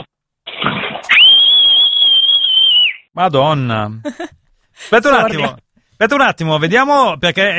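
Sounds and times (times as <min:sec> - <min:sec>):
loud piercing human mouth whistle: 0:01.2 - 0:03.0
speech: 0:03.2 - 0:07.5.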